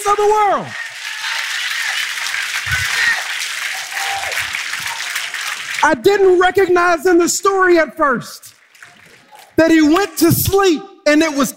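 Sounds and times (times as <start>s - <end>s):
speech: 0.0s - 0.8s, 5.8s - 8.5s, 9.6s - 11.5s
church congregation applauding and cheering: 0.0s - 6.0s, 8.5s - 9.6s
voices in the church congregation: 0.6s - 5.7s.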